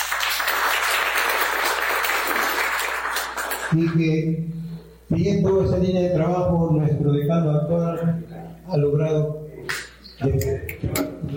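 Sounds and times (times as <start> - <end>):
audience applauding at a university faculty event: 0.0 - 3.8
speech: 3.7 - 9.4, 10.2 - 11.1.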